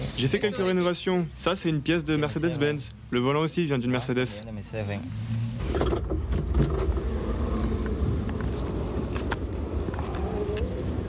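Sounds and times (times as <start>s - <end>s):
road noise in Havana Cuba: 0.0s - 11.0s
speech: 0.2s - 6.1s
1951 Chevrolet shared taxi engine rumble in Havana Cuba: 4.8s - 11.0s.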